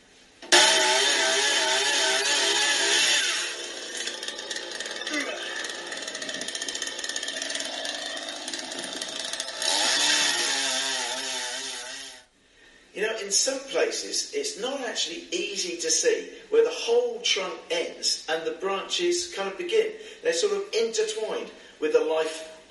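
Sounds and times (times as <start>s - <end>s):
chainsaw cutting tree branches: 0.5s - 12.3s
speech: 13.4s - 22.4s.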